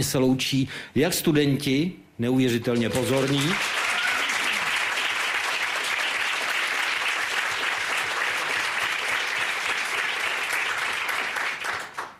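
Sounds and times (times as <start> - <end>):
speech: 0.0 - 3.8
large audience applauding in a lecture hall: 2.8 - 12.1.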